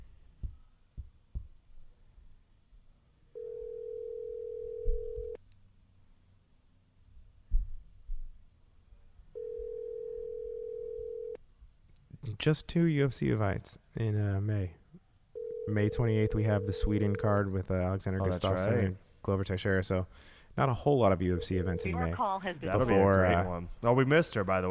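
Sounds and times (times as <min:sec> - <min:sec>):
telephone tones while dialing a call: 0:03.4 - 0:05.4, 0:09.4 - 0:11.4, 0:15.4 - 0:17.4, 0:21.4 - 0:22.1
speech: 0:12.4 - 0:14.8, 0:15.7 - 0:24.6.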